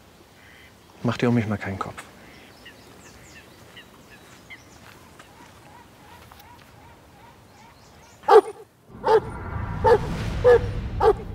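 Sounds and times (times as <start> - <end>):
speech: 1.0 - 2.1
dog barking: 8.3 - 9.3, 9.9 - 11.2
low rumble: 8.9 - 11.3.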